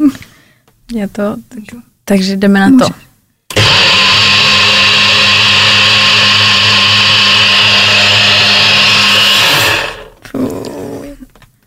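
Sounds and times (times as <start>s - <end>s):
speech: 0.9s - 3.0s
blender mixing a smoothie: 3.5s - 10.2s.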